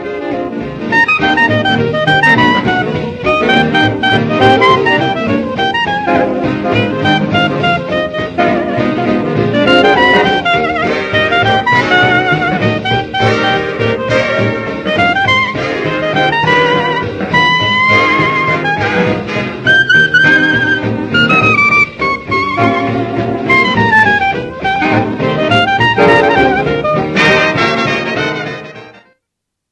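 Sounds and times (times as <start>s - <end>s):
orchestral clarinet: 0.0s - 29.2s.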